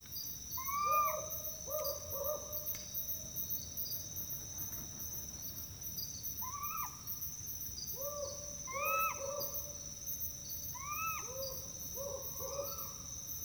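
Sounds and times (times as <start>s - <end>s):
Hume's owl male, female and nestling calling: 0.6s - 2.4s, 6.4s - 7.1s, 8.0s - 9.6s, 10.8s - 13.0s.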